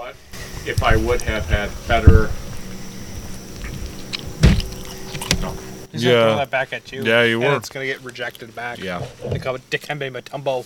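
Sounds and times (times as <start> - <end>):
hiss: 0.0 - 10.6
speech: 0.1 - 2.4, 5.4 - 10.6
microphone knocked over: 0.4 - 5.8.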